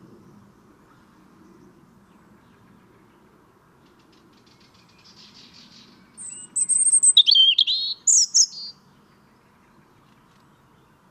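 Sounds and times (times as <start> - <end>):
European robin singing, Erithacus rubecula: 4.5 - 11.1.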